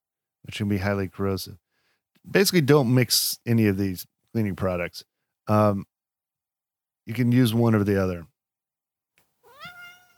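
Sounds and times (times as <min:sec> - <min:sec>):
speech: 0:00.5 - 0:01.6, 0:02.2 - 0:05.9, 0:07.1 - 0:08.3
domestic cat meowing: 0:09.4 - 0:10.1.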